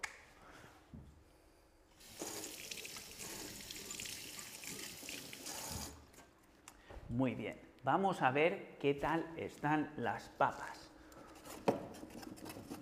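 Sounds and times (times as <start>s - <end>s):
tap water running over hands while rinsing: 2.0s - 6.0s
speech: 7.1s - 10.8s.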